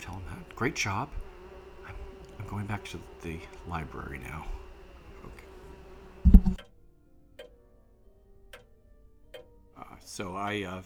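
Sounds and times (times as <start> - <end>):
clock ticking: 0.0 - 6.8
speech: 0.6 - 1.2, 2.4 - 4.6, 10.0 - 10.8
low thump: 6.2 - 6.6.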